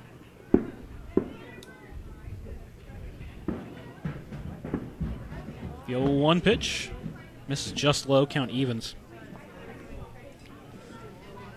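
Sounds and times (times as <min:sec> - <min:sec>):
low murmur of indistinct voices and crowd noise: 0:00.0 - 0:11.5
fireworks popping and cracking: 0:00.5 - 0:01.5, 0:02.5 - 0:07.9
speech: 0:05.9 - 0:09.0.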